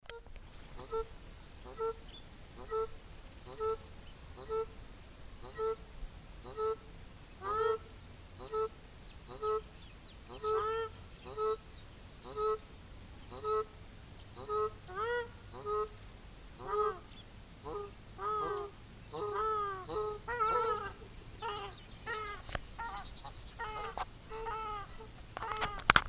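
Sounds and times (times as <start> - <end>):
grey-headed shelduck calling: 0.1 - 2.0, 2.6 - 3.8, 4.4 - 4.8, 5.4 - 5.8, 6.4 - 9.7, 10.3 - 11.6, 12.2 - 12.6, 13.3 - 13.7, 14.4 - 16.0, 16.6 - 25.9.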